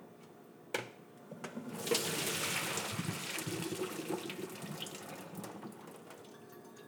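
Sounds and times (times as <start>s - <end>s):
water pouring into a sink while draining cooked pasta noodles for pastitsio: 1.6s - 6.3s.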